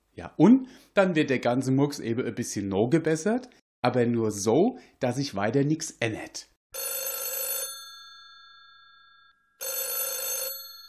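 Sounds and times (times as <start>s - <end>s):
speech: 0.2s - 6.9s
old-fashioned telephone bell ringing loudly: 6.8s - 10.8s.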